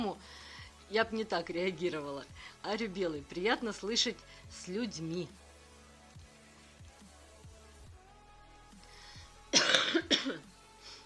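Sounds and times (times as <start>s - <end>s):
speech: 0.0s - 5.4s
harsh cough: 9.5s - 10.5s.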